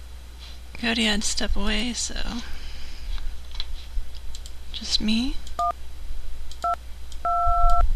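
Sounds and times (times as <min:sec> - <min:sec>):
speech: 0:00.8 - 0:02.6, 0:04.8 - 0:05.8
telephone keypad touch-tones beeping as a number is dialed: 0:06.6 - 0:07.8.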